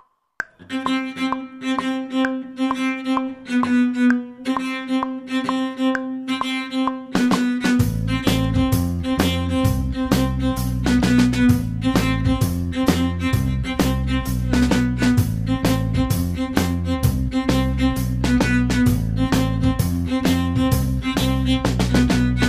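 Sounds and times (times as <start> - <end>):
cello section: 0.6 - 22.4.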